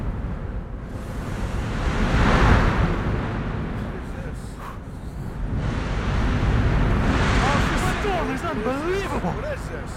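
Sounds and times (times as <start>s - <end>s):
constant roar of storm wind and water at sea: 0.0s - 9.9s
storm waves crashing against a ship at sea: 1.0s - 4.4s, 5.5s - 9.9s.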